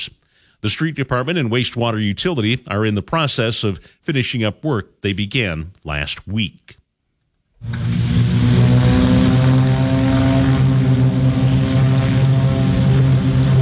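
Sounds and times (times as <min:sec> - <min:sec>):
speech: 0:00.0 - 0:06.8, 0:07.6 - 0:08.0
Beechcraft Bonanza propeller light airplanes taking off from a regional airport: 0:07.6 - 0:13.5.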